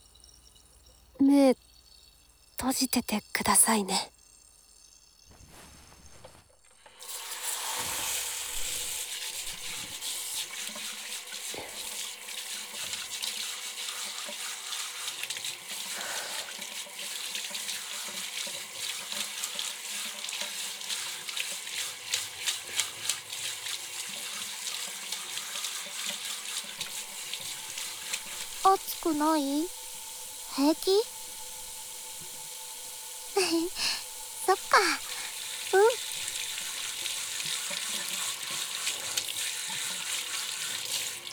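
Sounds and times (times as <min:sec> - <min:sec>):
shower water rinsing off shampoo foam: 0:00.0 - 0:41.3
speech: 0:01.2 - 0:01.6, 0:02.6 - 0:04.1, 0:29.2 - 0:29.8, 0:30.6 - 0:31.1, 0:33.5 - 0:34.0, 0:34.8 - 0:35.0.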